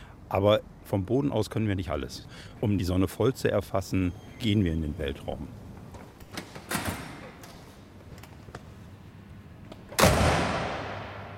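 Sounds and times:
speech: 0:00.3 - 0:05.6
heavy door slamming: 0:09.9 - 0:11.3.

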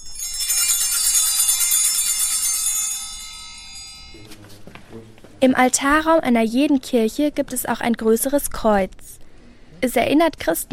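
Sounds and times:
small altar bells jingling at the elevation: 0:00.0 - 0:04.8
speech: 0:05.0 - 0:09.2, 0:09.8 - 0:10.7.

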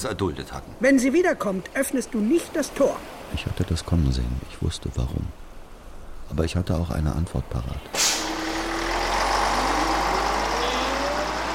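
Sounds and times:
speech: 0:00.0 - 0:05.4, 0:06.3 - 0:08.3
heavy bus engine rumbling at a station: 0:06.4 - 0:11.5
bus air brakes hissing: 0:07.9 - 0:08.7.

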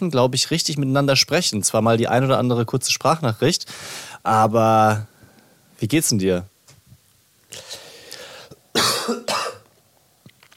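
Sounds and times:
speech: 0:00.0 - 0:05.1, 0:05.8 - 0:06.5
loud harsh coughs: 0:08.7 - 0:09.7
raspy throat-clearing: 0:08.8 - 0:09.7.

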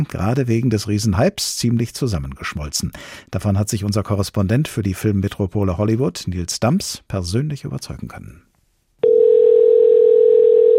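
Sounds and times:
speech: 0:00.0 - 0:08.5
telephone dial tone on a call to a shoe shop: 0:09.0 - 0:10.7.

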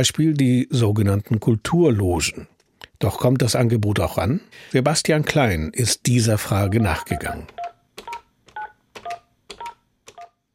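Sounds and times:
speech: 0:00.0 - 0:07.6
telephone keypad dialing tones: 0:06.6 - 0:10.4.

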